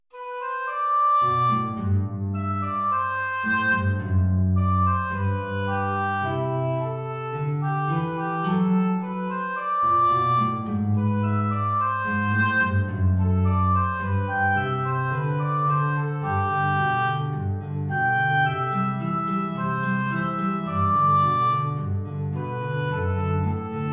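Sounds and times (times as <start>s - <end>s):
oboe playing andantino: 0.2s - 23.9s.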